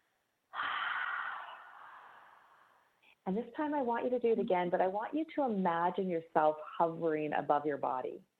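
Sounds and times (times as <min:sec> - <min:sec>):
deep breath during a guided breathing exercise: 0:00.5 - 0:03.2
speech: 0:03.3 - 0:08.3.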